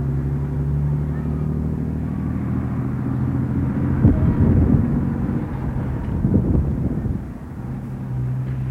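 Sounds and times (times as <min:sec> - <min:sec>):
cars passing on the highway: 0:00.0 - 0:08.6
wind buffeting: 0:03.3 - 0:08.4.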